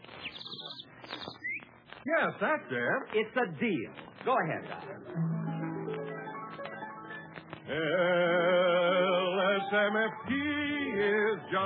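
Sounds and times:
bird whistle tweeting and warbling: 0.2s - 1.7s
speech: 2.0s - 5.4s, 7.7s - 11.6s.

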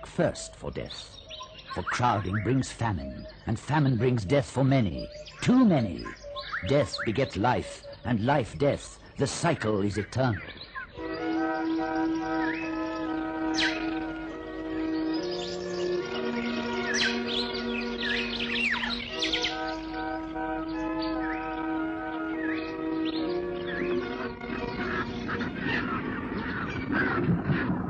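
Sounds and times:
flock of vultures calling: 0.0s - 27.8s
speech: 0.2s - 10.6s.

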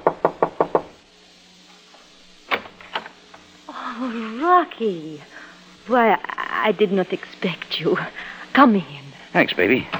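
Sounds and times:
knocking on a wooden apartment door: 0.0s - 1.0s
speech: 4.6s - 9.9s.

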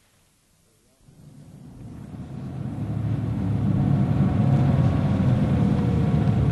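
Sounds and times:
car engine rumbling as the car drives and pulls up: 1.0s - 6.5s.

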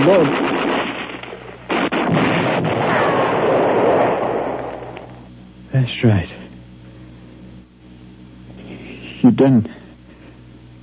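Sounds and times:
speech: 0.0s - 0.5s, 6.0s - 6.4s, 9.4s - 9.8s
grenade explosion in combat: 0.0s - 5.3s.

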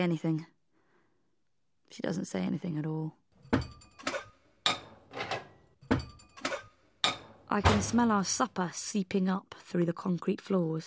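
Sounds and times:
speech: 0.0s - 0.6s, 1.9s - 3.7s, 7.5s - 10.8s
metal pots and pans clattering while cooking dinner: 3.4s - 8.0s.

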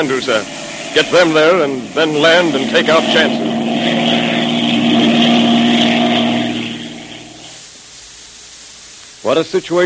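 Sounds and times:
speech: 0.0s - 3.7s, 9.2s - 9.8s
circling propeller airplane engine drone: 0.0s - 7.6s.

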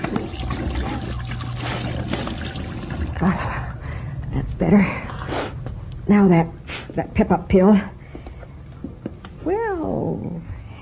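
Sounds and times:
water running and splashing into a sink: 0.0s - 3.2s
low hum: 0.0s - 10.8s
speech: 3.2s - 3.5s, 4.6s - 5.0s, 6.1s - 8.0s, 9.5s - 10.5s.

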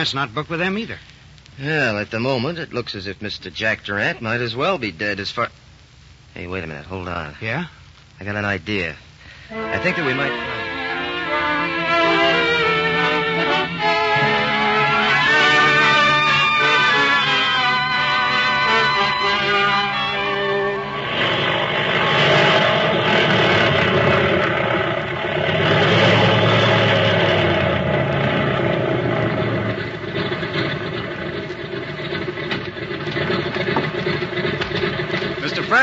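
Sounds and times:
speech: 0.0s - 5.6s, 6.3s - 10.6s
airplane engine droning: 9.5s - 35.8s.

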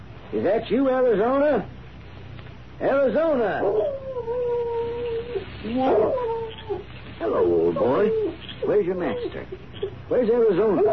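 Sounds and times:
speech: 0.3s - 1.8s, 2.8s - 10.9s
dog howling: 3.5s - 10.9s.

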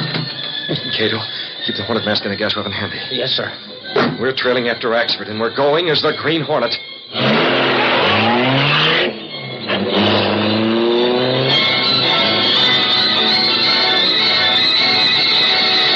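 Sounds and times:
speech: 0.7s - 7.3s
super-powered high-speed car engine revving: 7.1s - 15.9s.

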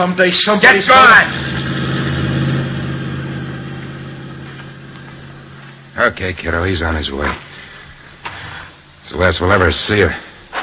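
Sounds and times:
speech: 0.0s - 1.8s, 6.0s - 7.5s, 9.1s - 10.2s
car motor running with a low droning hum: 1.2s - 6.2s.

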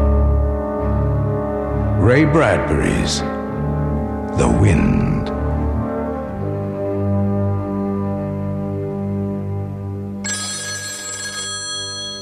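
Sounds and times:
low sustained musical drone: 0.0s - 10.2s
speech: 2.0s - 3.4s, 4.4s - 5.0s
bright telephone bell ringing: 10.2s - 12.2s.

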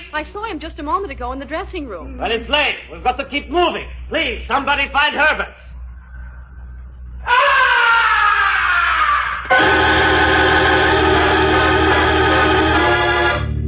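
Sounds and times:
speech: 0.2s - 5.6s
blood-curdling scream from high above: 7.2s - 13.5s.

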